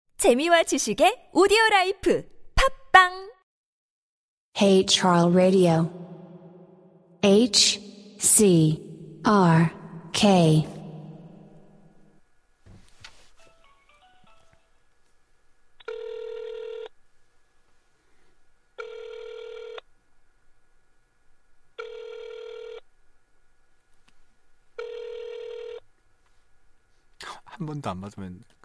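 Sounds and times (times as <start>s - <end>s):
speech: 0.2s - 3.3s, 4.6s - 6.0s, 7.2s - 10.8s, 27.7s - 28.6s
telephone ringback tone: 15.8s - 16.9s, 18.8s - 19.8s, 21.8s - 22.8s, 24.8s - 25.8s.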